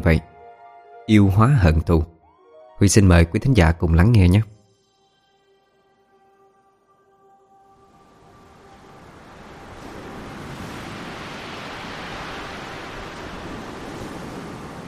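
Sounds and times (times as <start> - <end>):
speech: 0.0 - 0.3, 1.1 - 2.1, 2.8 - 4.5
evening river waves blown ashore by the wind: 7.8 - 14.8
wind: 7.9 - 14.8.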